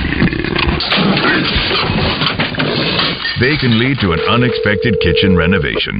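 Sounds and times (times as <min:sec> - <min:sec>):
leopard escaped from a zoo growling and roaring in a home kitchen: 0:00.0 - 0:03.1
speech: 0:03.4 - 0:05.9.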